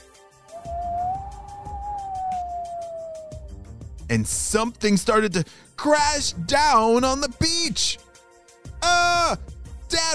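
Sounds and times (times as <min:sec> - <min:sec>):
eerie whistling howl of wind on a beach: 0:00.5 - 0:03.6
speech: 0:04.1 - 0:08.0, 0:08.9 - 0:10.1.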